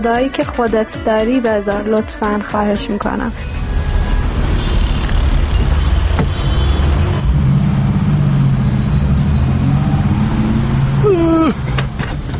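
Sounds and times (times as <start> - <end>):
speech: 0.0 - 3.6
low rumble of car engines in traffic: 3.0 - 12.3
vehicle engine whine as it revs or shifts: 3.4 - 12.3.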